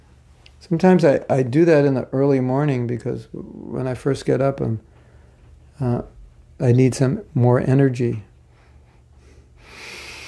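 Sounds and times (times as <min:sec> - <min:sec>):
speech: 0:00.6 - 0:04.9, 0:05.8 - 0:08.3
forceful breath drawn in through the nose: 0:08.5 - 0:10.2.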